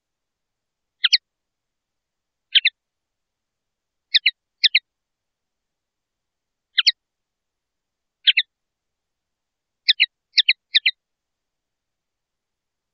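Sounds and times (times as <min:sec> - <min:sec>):
common linnet twittering in two-note chirps: 0:01.0 - 0:01.2, 0:02.5 - 0:02.8, 0:04.1 - 0:04.8, 0:06.8 - 0:07.0, 0:08.2 - 0:08.5, 0:09.9 - 0:11.0.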